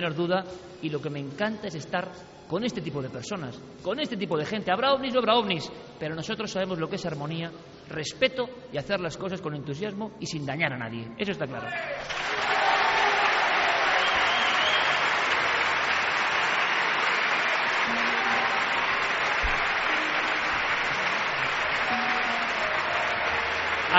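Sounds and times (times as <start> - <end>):
speech: 0.0 - 12.5
live audience applauding: 12.1 - 23.9.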